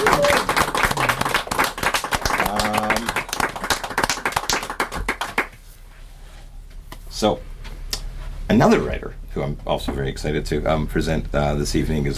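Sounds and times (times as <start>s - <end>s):
audience applauding for a reader: 0.0s - 5.6s
speech: 7.2s - 7.5s, 8.5s - 12.1s.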